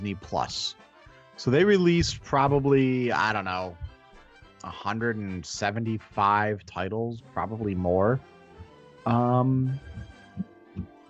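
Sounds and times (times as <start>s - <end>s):
speech: 0.0s - 0.8s, 1.4s - 3.9s, 4.6s - 8.3s, 9.0s - 10.9s
soft low thumps from scrolling through a list on a device: 1.6s - 4.5s, 9.8s - 10.2s.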